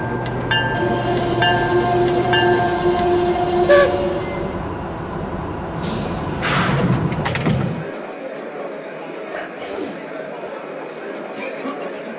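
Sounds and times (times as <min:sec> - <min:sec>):
steady horn-like tones: 0:00.0 - 0:05.2
passenger train rumbling along the rails: 0:00.0 - 0:08.0.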